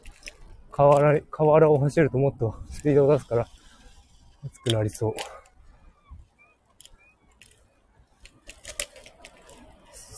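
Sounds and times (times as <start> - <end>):
speech: 0.8 - 3.6, 4.4 - 5.4
seagulls calling in the Susukino area of Sapporo, Japan: 3.5 - 9.8.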